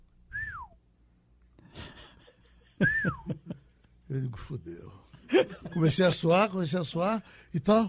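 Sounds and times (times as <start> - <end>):
eerie descending whistles heard on a car recorder: 0.3 - 0.8, 2.8 - 3.3
laughter: 1.7 - 3.7, 5.2 - 6.3
speech: 2.8 - 3.4, 4.1 - 7.8.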